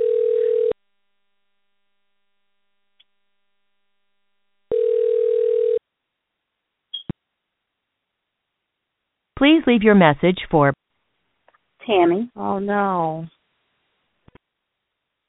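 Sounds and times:
telephone ringing tone while a call is dialing: 0.0 - 0.8, 4.7 - 5.8
speech: 9.4 - 10.8, 11.9 - 13.4.

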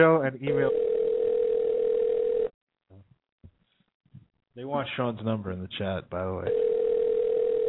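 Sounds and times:
speech: 0.0 - 0.9, 4.6 - 6.7
telephone ringing tone on a call: 0.5 - 2.5, 6.5 - 7.6.

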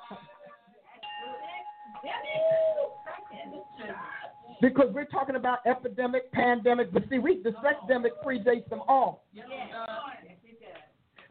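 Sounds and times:
bell struck and ringing: 1.0 - 4.8
speech: 3.8 - 9.5.

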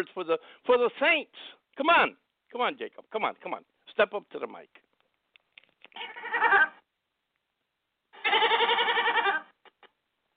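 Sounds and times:
speech: 0.0 - 4.8
faint clicks and taps: 4.7 - 6.0
goat in a studio bleating: 6.0 - 6.8, 8.1 - 9.6.

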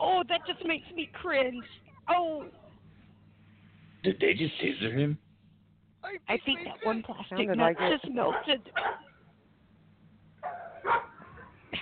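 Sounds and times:
low hum: 0.0 - 11.8
speech: 0.3 - 2.6, 4.0 - 5.2, 6.0 - 9.1, 10.8 - 11.1
guard dogs barking while being unleashed: 7.6 - 9.2, 10.4 - 11.7.

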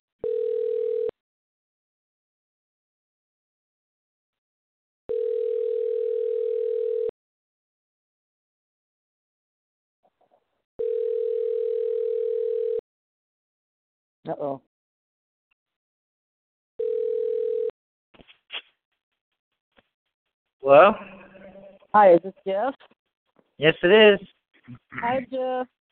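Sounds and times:
telephone dial tone while placing a call: 0.2 - 1.2, 5.1 - 7.1, 10.8 - 12.8, 16.8 - 17.7
speech: 14.3 - 14.7, 20.6 - 21.1, 22.0 - 23.0, 23.6 - 25.8.

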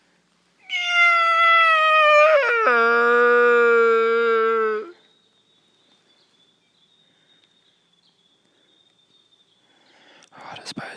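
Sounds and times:
hunter imitating a sika stag roar during a morning hunt: 0.8 - 5.0.

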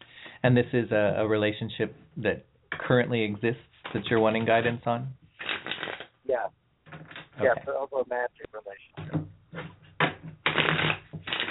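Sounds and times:
speech: 0.4 - 5.2, 7.4 - 9.1
cards being shuffled during a reading: 5.3 - 6.1, 10.4 - 11.4.

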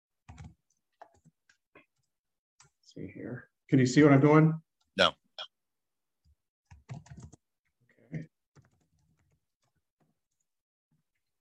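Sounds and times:
typing on a computer keyboard: 0.2 - 2.7, 6.7 - 7.4, 8.6 - 10.4
speech: 2.9 - 5.2.

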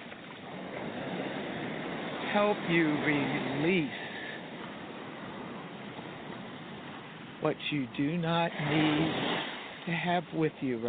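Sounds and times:
waves coming in to shore: 0.0 - 10.8
speech: 2.3 - 4.1, 7.4 - 10.8.

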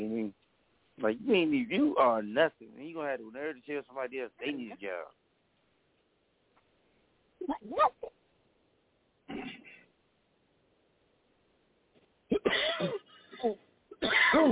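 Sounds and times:
speech: 1.0 - 5.2, 7.4 - 8.2, 9.3 - 9.7, 12.4 - 14.5
person coughing with something stuck in the throat: 4.4 - 4.8, 9.3 - 9.8, 12.3 - 14.5.

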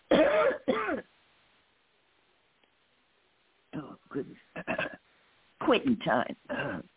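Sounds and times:
person clearing throat: 0.1 - 1.0, 4.6 - 5.0, 6.5 - 6.9
person coughing: 0.1 - 1.0, 4.6 - 5.0, 6.5 - 6.9
speech: 4.2 - 4.5, 5.7 - 6.9.

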